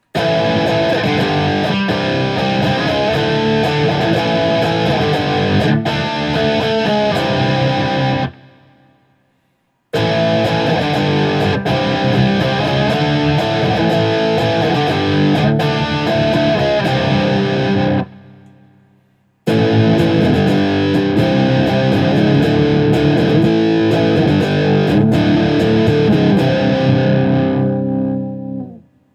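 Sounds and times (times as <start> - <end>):
1977 Guild S-60 electric guitar playing barre chords: 0.2 - 8.8, 10.0 - 18.8, 19.5 - 28.9.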